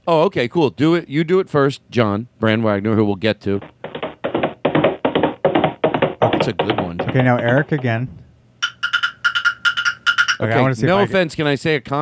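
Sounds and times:
speech: 0.1 - 3.8, 6.2 - 8.2, 10.4 - 12.0
stick tapping in a galloping rhythm imitating horse hooves: 3.6 - 10.6.

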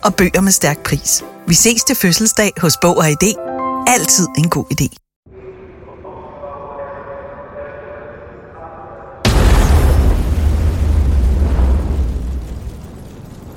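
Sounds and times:
speech: 0.0 - 5.0
explosion echoing in a railway station hall: 9.2 - 13.5.

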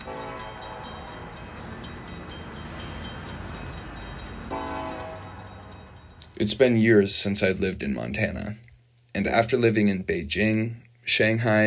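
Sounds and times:
horn-like tone: 0.0 - 1.1, 4.5 - 5.7
distant train passing: 0.0 - 7.7
speech: 6.4 - 11.6.

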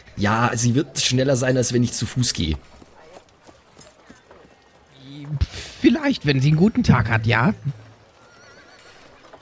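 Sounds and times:
speech: 0.2 - 2.8, 6.1 - 7.8
horse neighing in a short wavering whinny: 8.1 - 9.3.

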